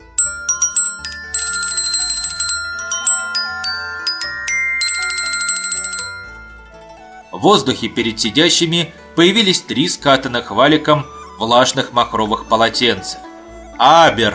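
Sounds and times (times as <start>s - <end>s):
small bells chiming: 0.0s - 6.5s
speech: 7.4s - 13.2s, 13.8s - 14.3s.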